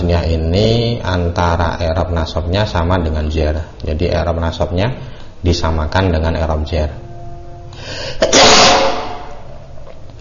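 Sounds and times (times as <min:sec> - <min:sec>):
speech: 0:00.1 - 0:07.0, 0:07.8 - 0:09.0
person sneezing: 0:08.0 - 0:09.2.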